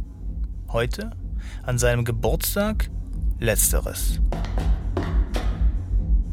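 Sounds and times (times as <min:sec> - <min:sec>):
loud bass music playing inside an apartment: 0:00.0 - 0:06.3
speech: 0:00.7 - 0:04.7
knocking on a neighbour's apartment door: 0:04.3 - 0:05.7.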